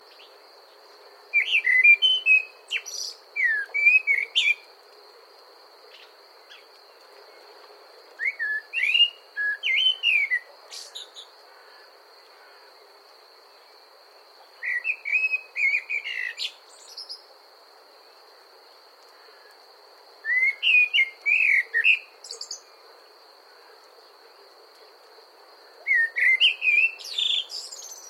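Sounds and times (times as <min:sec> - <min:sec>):
blackbird singing: 0:01.3 - 0:04.6, 0:08.2 - 0:11.3, 0:14.6 - 0:17.2, 0:20.2 - 0:22.8, 0:25.8 - 0:28.0.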